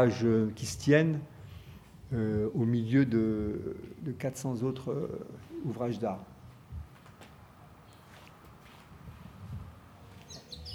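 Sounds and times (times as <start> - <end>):
speech: 0.0 - 1.3, 2.1 - 6.3
faint blackbird chirps: 10.2 - 10.7.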